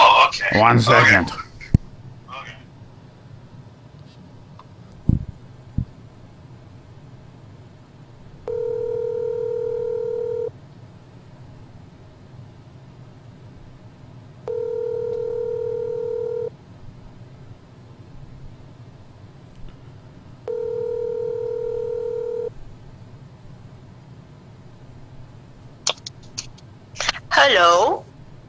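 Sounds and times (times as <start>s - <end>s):
faint hum: 0.0s - 28.4s
speech: 0.5s - 1.4s
telephone ringback tone while placing a phone call: 8.5s - 10.5s, 14.5s - 16.5s, 20.5s - 22.5s.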